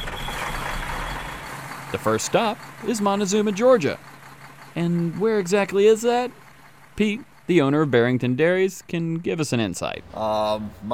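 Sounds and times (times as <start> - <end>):
broad road noise: 0.0 - 10.9
milk truck engine rumbling on a road trip in Georgia: 0.0 - 10.9
speech: 1.9 - 4.1, 4.8 - 6.4, 7.0 - 10.9.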